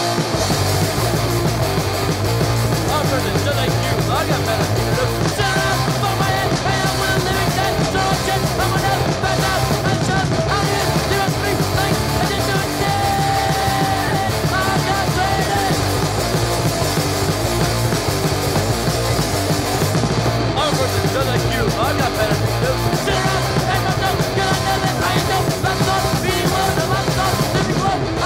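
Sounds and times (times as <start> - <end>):
distorted guitars: 0.0 - 28.2
driving drums: 0.0 - 28.2
loud dense hardcore punk song: 0.0 - 28.2
melodic shouted vocals: 0.0 - 28.2.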